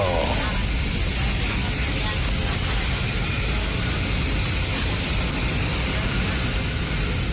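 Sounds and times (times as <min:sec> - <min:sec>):
airplane cabin engine roar: 0:00.0 - 0:07.3.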